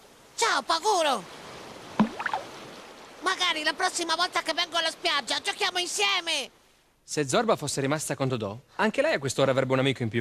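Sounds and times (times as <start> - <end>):
speech: 0.5 - 1.4, 3.2 - 10.2
sea water washing in with a quick splash: 1.2 - 3.7
short sea water gurgle: 1.8 - 2.9.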